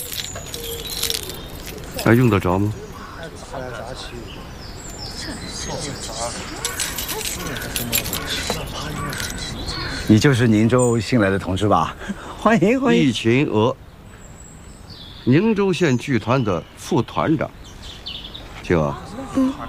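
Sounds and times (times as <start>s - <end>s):
bunch of keys jingling as they are handed over: 0.0s - 2.6s, 6.4s - 9.6s
faint ambience: 0.0s - 19.6s.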